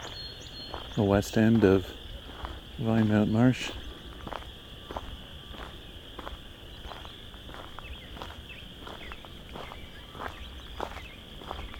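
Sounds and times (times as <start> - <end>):
chorus frogs calling at the west end of a marsh in late March: 0.0 - 11.7
speech: 1.0 - 2.0, 2.8 - 3.8.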